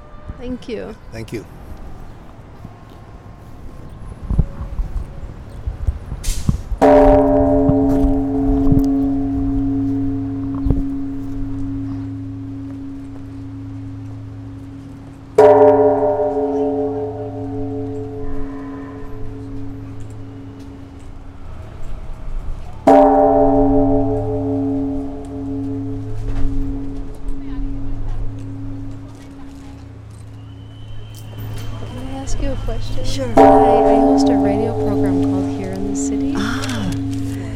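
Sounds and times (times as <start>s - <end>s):
speech: 0.4s - 1.6s
large deep memorial bell rung by attendees: 6.8s - 21.0s, 22.8s - 29.5s, 32.3s - 37.5s.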